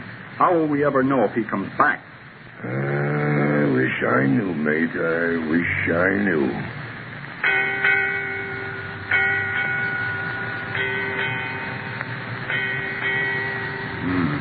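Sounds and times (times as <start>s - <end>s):
speech: 0.4s - 3.2s, 3.9s - 6.8s
ship's bell aboard a ship striking eight bells: 7.4s - 14.3s.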